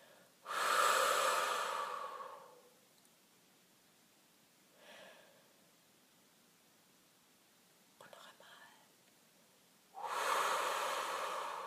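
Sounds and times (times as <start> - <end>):
long exhale during a breathing exercise: 0.0 - 2.7, 4.8 - 5.6, 10.0 - 11.6.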